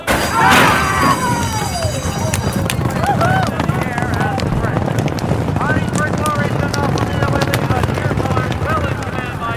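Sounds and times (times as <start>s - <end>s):
people shouting: 0.1s - 3.6s
crowd roar at a horse race: 0.1s - 3.7s
racehorse hooves galloping in a horse race: 0.9s - 9.5s.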